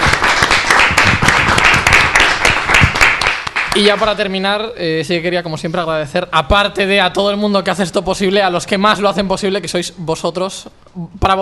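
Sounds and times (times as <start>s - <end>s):
audience applause: 0.0s - 4.0s
speech: 3.8s - 11.3s.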